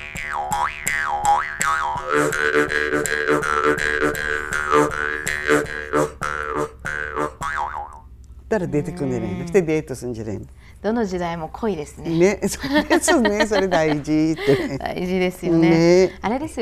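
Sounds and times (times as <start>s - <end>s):
Ainu mukkuri mouth harp twanging: 0.0s - 9.6s
speech: 2.1s - 6.2s, 8.5s - 16.5s
laughter: 12.2s - 16.5s.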